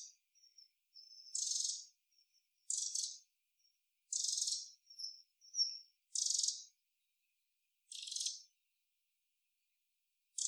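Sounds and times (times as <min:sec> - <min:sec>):
Eurasian wren dry buzzy rattling calls: 0:00.0 - 0:01.9, 0:02.7 - 0:03.2, 0:04.1 - 0:06.7, 0:07.9 - 0:08.4.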